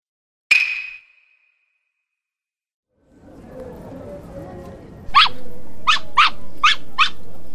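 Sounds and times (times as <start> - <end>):
noise: 2.9 - 7.5
toy poodle barking: 5.1 - 7.3.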